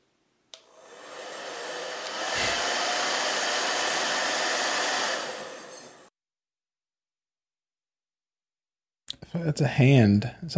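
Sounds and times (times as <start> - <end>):
hair dryer blowing: 0.6 - 6.1
speech: 9.3 - 10.5.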